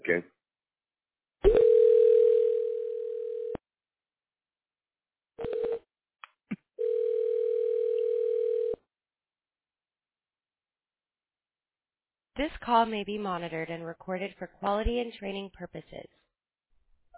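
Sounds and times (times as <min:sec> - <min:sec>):
speech: 0:00.1 - 0:00.3, 0:12.7 - 0:16.2
telephone line ringing as a call is transferred: 0:01.5 - 0:03.6, 0:06.8 - 0:08.8.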